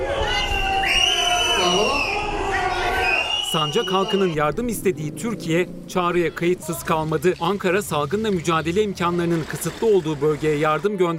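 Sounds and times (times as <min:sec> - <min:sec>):
dense outdoor crowd whistling shrilly: 0:00.0 - 0:04.5
speech: 0:03.5 - 0:11.1.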